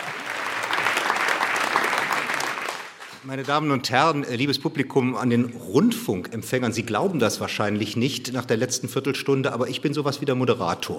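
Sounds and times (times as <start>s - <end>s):
audience applause at a live literature stage event: 0.0s - 3.6s
speech: 3.2s - 10.9s.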